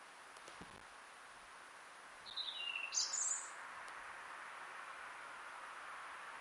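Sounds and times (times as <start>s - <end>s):
background hiss: 0.0s - 6.3s
European robin song: 2.2s - 3.6s.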